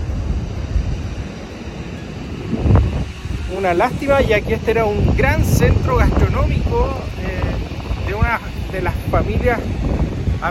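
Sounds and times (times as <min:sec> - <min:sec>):
coastal wind buffeting the microphone: 0:00.0 - 0:10.5
ocean waves washing and rumbling on the coast: 0:00.0 - 0:10.5
speech: 0:03.5 - 0:07.4, 0:08.1 - 0:10.5.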